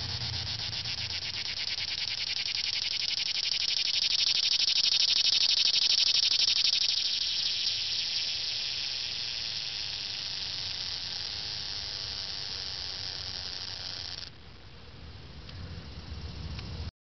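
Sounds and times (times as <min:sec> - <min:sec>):
cicada buzzing: 0:00.0 - 0:14.4
faint hiss: 0:00.0 - 0:16.8.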